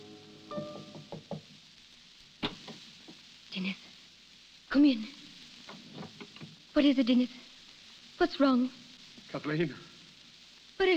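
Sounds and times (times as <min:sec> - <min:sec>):
soft knocking on a wooden door: 0:00.6 - 0:01.6
speech: 0:03.6 - 0:03.8, 0:04.7 - 0:05.2, 0:06.8 - 0:07.4, 0:08.2 - 0:09.9.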